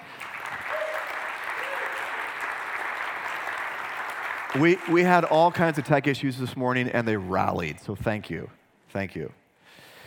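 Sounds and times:
room full of people applauding: 0.0s - 6.1s
speech: 4.6s - 9.8s.

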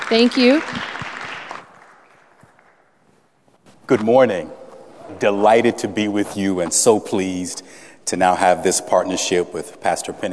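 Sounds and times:
crowd applauding to welcome a speaker: 0.0s - 2.9s
speech: 0.1s - 0.9s, 3.9s - 10.3s.

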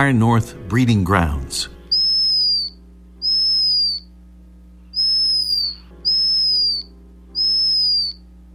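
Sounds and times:
speech: 0.0s - 1.8s
low steady rumble: 0.0s - 8.5s
black guillemot whistling: 1.8s - 4.2s, 4.9s - 8.5s.

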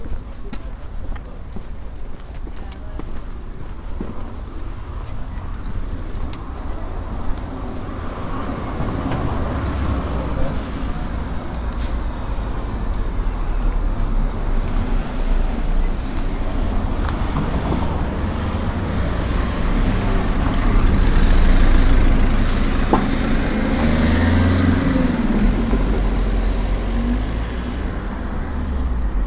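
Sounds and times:
faint voices murmuring: 0.0s - 23.2s
dense road traffic with deep engine rumble: 0.0s - 29.2s.

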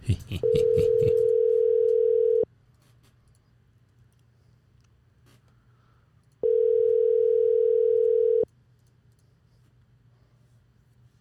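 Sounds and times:
laughter: 0.0s - 1.4s
outgoing phone call ring tones on the line: 0.5s - 2.5s, 6.4s - 8.4s.

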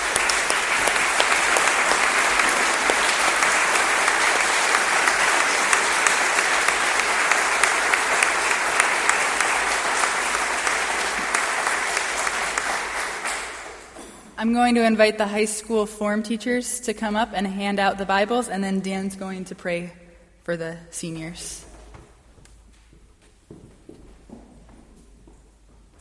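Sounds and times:
graduation ceremony crowd applauding: 0.0s - 14.0s
speech: 14.5s - 21.7s.

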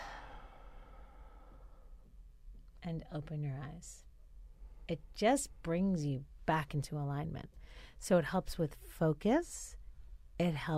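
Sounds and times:
audible exhale after a held breath during a breathing exercise: 0.0s - 1.9s
speech: 2.8s - 4.1s, 4.9s - 9.8s, 10.4s - 10.7s.

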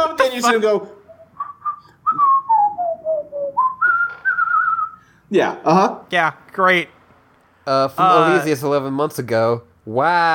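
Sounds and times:
speech: 0.4s - 1.0s, 5.3s - 7.0s, 7.7s - 10.3s
person whistling a TV theme tune: 1.1s - 5.1s.

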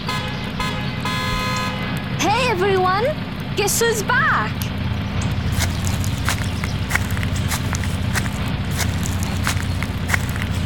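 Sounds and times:
car horn honking: 0.1s - 2.0s
speech: 2.6s - 4.7s
low rumbling background: 4.6s - 10.6s.

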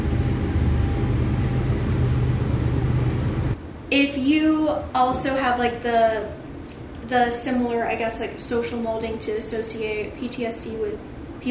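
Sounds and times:
train rumbling past: 0.0s - 3.6s
speech: 3.9s - 6.4s, 7.1s - 11.1s.

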